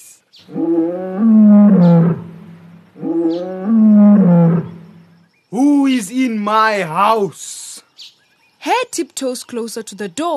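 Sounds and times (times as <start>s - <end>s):
lion roaring outside a house: 0.5s - 4.9s
speech: 6.5s - 7.6s, 8.6s - 10.3s.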